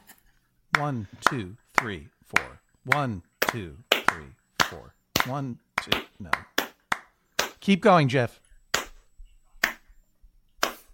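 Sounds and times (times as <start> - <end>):
hands clapping in rhythm: 0.7 - 7.7, 8.7 - 9.0, 9.6 - 9.8, 10.6 - 10.9
speech: 0.8 - 6.5, 7.6 - 8.4.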